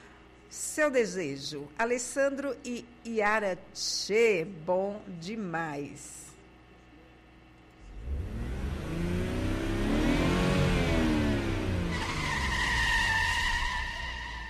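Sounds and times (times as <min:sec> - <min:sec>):
speech: 0:00.5 - 0:06.2
car engine revving as the accelerator is pressed: 0:07.8 - 0:14.3.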